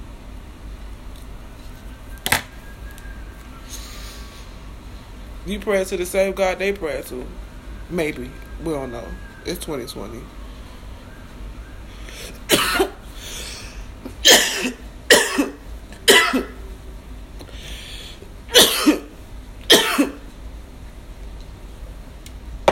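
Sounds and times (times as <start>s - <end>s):
faint breathing: 3.6s - 5.1s, 11.9s - 13.9s, 17.4s - 18.3s
speech: 5.5s - 10.4s
harsh raspy coughs while smoking: 12.5s - 13.0s, 14.2s - 16.6s, 18.5s - 19.1s, 19.7s - 20.2s.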